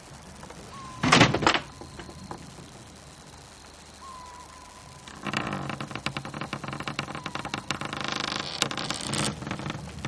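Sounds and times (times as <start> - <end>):
dense crackling noise: 0.0 - 10.0
door being opened and closed: 1.0 - 2.4, 5.1 - 10.0.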